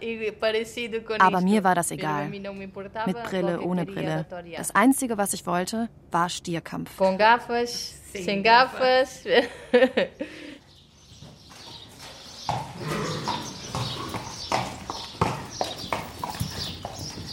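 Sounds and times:
speech: 0.0 - 10.5
laughter: 9.3 - 10.6
horse hooves clip-clopping on a hard surface: 11.0 - 17.3.

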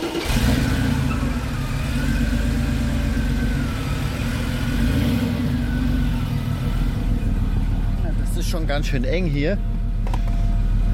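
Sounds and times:
Porsche sports car engine idling and lightly revving driving out of garage: 0.0 - 10.9
speech: 8.5 - 9.7.

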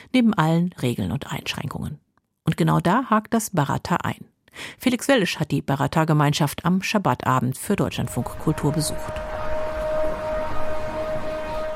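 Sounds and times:
speech: 0.1 - 9.3
siren announcing the start of Shabbat in Jerusalem: 7.8 - 11.7.

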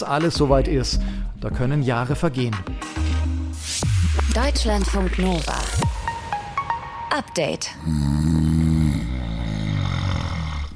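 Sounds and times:
speech: 0.0 - 3.0, 3.6 - 5.7, 7.1 - 8.6
snoring: 7.8 - 10.7.

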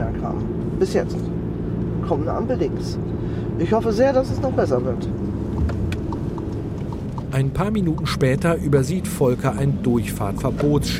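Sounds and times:
car engine rumbling in city traffic: 0.0 - 10.9
speech: 0.8 - 1.4, 2.0 - 5.3, 7.3 - 10.9
light evenly spaced ticking: 5.5 - 8.8.

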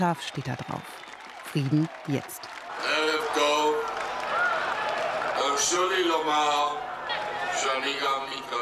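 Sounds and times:
speech: 0.0 - 3.5, 5.6 - 6.9, 7.6 - 8.6
scattered clapping: 0.0 - 6.4
large crowd at a peace demonstration roaring and cheering: 0.0 - 8.6.

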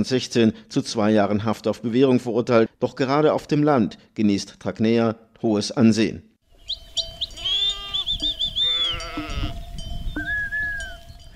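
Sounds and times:
speech: 0.0 - 6.3
sheep bleating in the rural village of Faliuc, Caraș-Severin County, Romania: 7.3 - 9.6.

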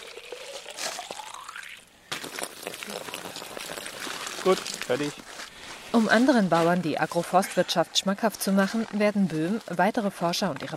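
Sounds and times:
fresh groundwater pouring into an empty plastic bottle on a farm in Brandenburg: 0.0 - 5.2
speech: 2.9 - 3.4, 4.4 - 10.7.

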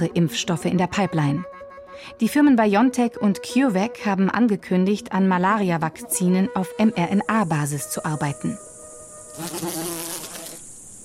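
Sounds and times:
speech: 0.0 - 8.7, 9.4 - 10.2
mosquito buzzing with a thin wavering whine: 5.6 - 11.0.

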